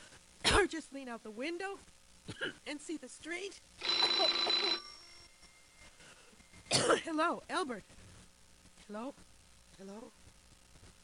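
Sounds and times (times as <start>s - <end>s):
speech: 0.7s - 4.9s, 6.8s - 8.0s, 8.9s - 10.2s
telephone ringing with a high buzzing bell: 3.8s - 5.9s.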